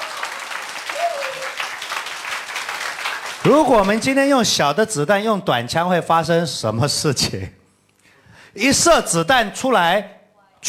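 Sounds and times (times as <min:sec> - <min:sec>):
audience clapping: 0:00.0 - 0:04.4
speech: 0:03.4 - 0:07.6, 0:08.6 - 0:10.6.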